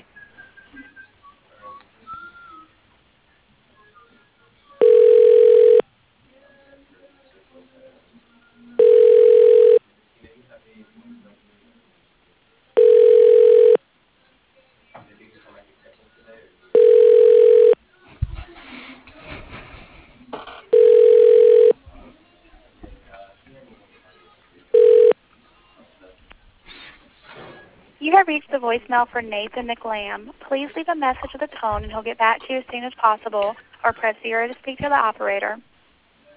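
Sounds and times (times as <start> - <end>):
quiet telephone line noise: 4.8 - 5.8, 8.8 - 9.8, 12.8 - 13.8, 16.8 - 17.8, 20.7 - 21.8, 24.8 - 25.2
telephone ringback tones during call transfer: 4.8 - 5.8, 8.8 - 9.8, 12.8 - 13.8, 16.8 - 17.8, 20.7 - 21.8, 24.7 - 25.2
speech: 28.3 - 35.7.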